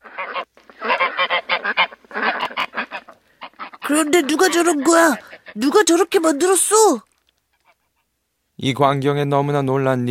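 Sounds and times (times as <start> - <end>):
geese honking in a farmyard: 0.0 - 5.9
hens squawking in a farmyard: 0.0 - 6.9
speech: 3.9 - 7.1, 8.6 - 10.0.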